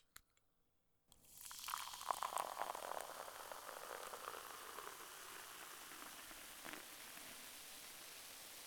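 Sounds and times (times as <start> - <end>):
pouring: 1.4 - 7.3.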